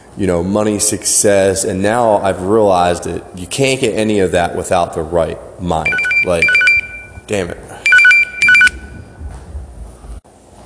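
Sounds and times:
speech: 0.2s - 6.6s, 7.3s - 7.6s
electronic phone ring: 5.9s - 7.3s, 7.9s - 9.0s.

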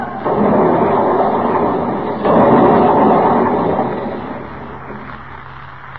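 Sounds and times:
yacht smashing onto rocks with crashing and grinding: 0.0s - 5.9s.

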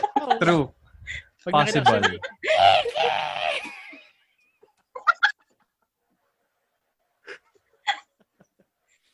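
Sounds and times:
speech: 0.2s - 3.4s
laughter: 1.6s - 5.8s
person screaming loudly: 2.5s - 3.7s.

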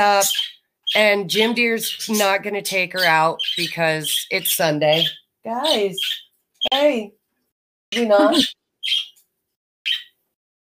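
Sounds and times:
speech: 0.0s - 7.2s, 7.9s - 9.1s
short high bird chirps: 0.1s - 7.0s, 8.0s - 9.2s, 9.8s - 10.2s.

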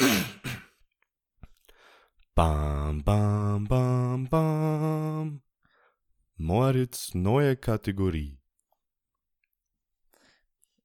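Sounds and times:
person clearing throat: 0.0s - 0.8s
speech: 2.4s - 5.4s, 6.4s - 8.4s.

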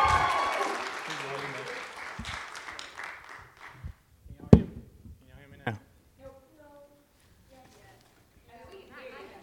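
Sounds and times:
audience applause welcoming a speaker: 0.0s - 3.9s.

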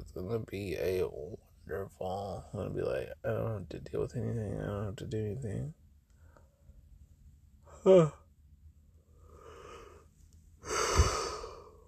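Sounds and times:
speech: 0.2s - 5.8s, 7.8s - 8.2s
person yawning: 7.7s - 8.2s, 10.6s - 11.7s.

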